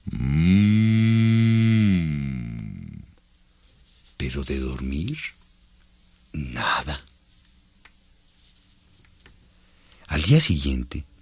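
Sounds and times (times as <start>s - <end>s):
person imitating a bull's long low yawning moo: 0.0s - 3.2s
speech: 4.3s - 5.4s, 6.3s - 7.0s, 10.3s - 11.1s.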